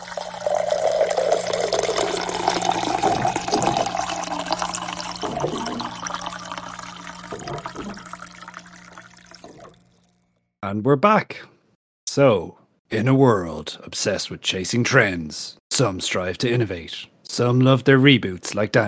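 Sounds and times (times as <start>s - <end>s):
water pouring into a glass: 0.0s - 10.2s
speech: 10.7s - 11.5s, 12.2s - 18.8s.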